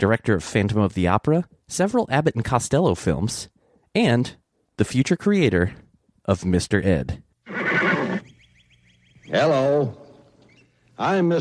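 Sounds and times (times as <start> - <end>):
speech: 0.0 - 7.8, 9.3 - 10.0, 11.0 - 11.3
horse neighing: 7.4 - 8.4, 9.3 - 10.3
faint high chirping: 8.0 - 11.1.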